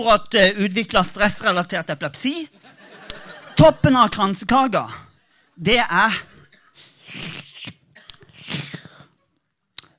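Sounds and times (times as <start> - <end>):
speech: 0.0 - 2.8, 3.6 - 5.0, 5.6 - 7.3
laughter: 2.5 - 4.1
slurping and sipping from a thin porcelain coffee cup: 7.0 - 9.1.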